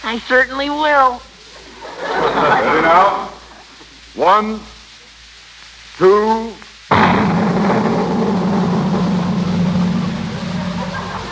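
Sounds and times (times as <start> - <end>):
speech: 0.0 - 1.3, 2.0 - 3.3, 4.2 - 4.7, 6.0 - 6.6
laughter: 1.5 - 3.8, 10.4 - 11.3
cannon blast from a giant firecracker: 6.9 - 11.3
dense roaring rumble from a giant firecracker: 6.9 - 11.3.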